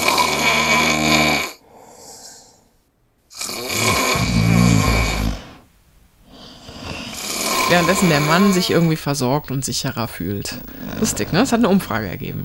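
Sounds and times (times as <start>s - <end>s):
man snoring loudly: 0.0s - 2.7s, 3.3s - 5.6s, 6.3s - 8.9s, 10.7s - 11.6s
speech: 7.7s - 12.4s.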